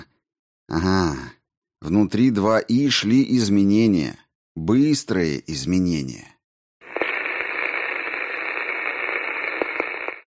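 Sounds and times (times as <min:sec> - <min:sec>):
speech: 0:01.9 - 0:06.3
radio static hissing: 0:06.8 - 0:10.2.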